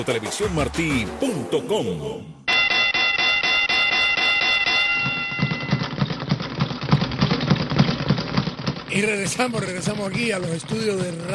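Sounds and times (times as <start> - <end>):
speech: 0.0 - 2.4, 8.9 - 11.3
boxing ring bell ringing in a rapid continuous clang: 2.5 - 5.9
busy background of clattering noise: 3.2 - 11.3.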